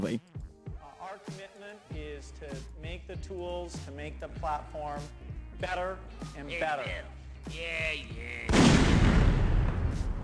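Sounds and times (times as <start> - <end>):
speech: 0.0 - 0.3, 1.2 - 10.2
dense gunfire barrage: 8.5 - 10.2.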